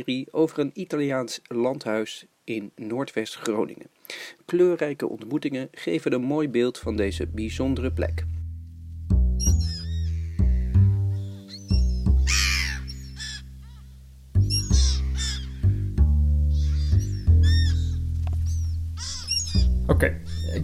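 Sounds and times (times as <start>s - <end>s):
speech: 0.0s - 8.3s
seagulls calling while flying over an inner courtyard: 9.4s - 20.6s.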